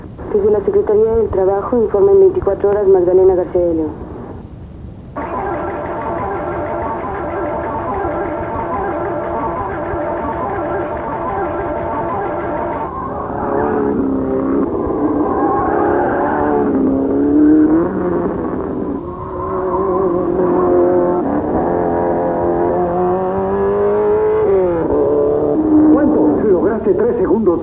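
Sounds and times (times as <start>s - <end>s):
speech: 0.4s - 4.0s
Renault-engined race cars lapping at the 24 Hours of Le Mans: 5.2s - 26.8s.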